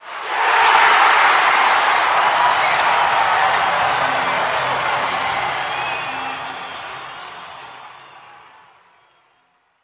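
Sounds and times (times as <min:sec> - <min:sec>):
crowd cheering yeah, big cheer: 0:00.0 - 0:09.8.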